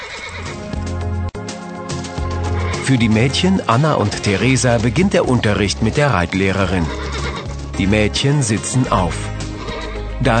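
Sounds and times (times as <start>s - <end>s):
horse neighing: 0.0s - 0.6s, 2.4s - 3.0s, 6.5s - 7.5s, 9.5s - 10.1s
speech: 2.9s - 7.1s, 7.8s - 9.3s, 10.2s - 10.3s.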